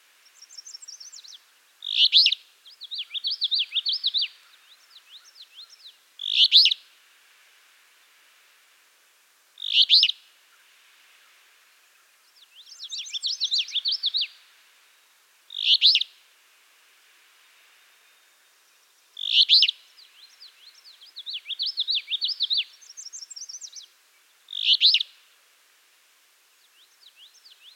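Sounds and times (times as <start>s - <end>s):
Alder flycatcher Empidonax alnorum calling: 0.2s - 6.8s, 9.6s - 10.6s, 12.0s - 14.4s, 15.5s - 16.2s, 19.2s - 25.2s.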